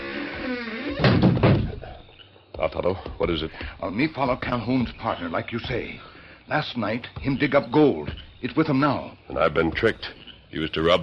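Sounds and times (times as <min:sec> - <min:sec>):
door creaking on its hinges: 0:00.0 - 0:02.0
door rattling as it settles: 0:00.3 - 0:02.0
door swinging shut with a loud wooden thud: 0:00.6 - 0:02.0
speech: 0:02.6 - 0:11.0.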